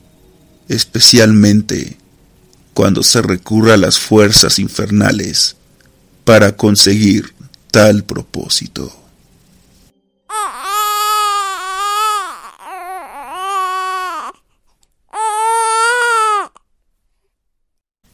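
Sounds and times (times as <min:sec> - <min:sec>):
speech: 0:00.7 - 0:02.0, 0:02.8 - 0:05.6, 0:06.3 - 0:09.0
infant crying eerily in long wavering wails in a hut: 0:10.3 - 0:14.4, 0:15.1 - 0:16.7.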